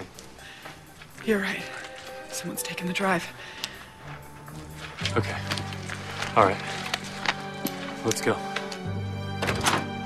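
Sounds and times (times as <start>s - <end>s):
speech: 1.2s - 1.8s, 2.4s - 3.6s, 5.1s - 5.8s, 6.4s - 6.8s, 8.0s - 9.0s
door closing with a dull thunk: 9.4s - 9.9s.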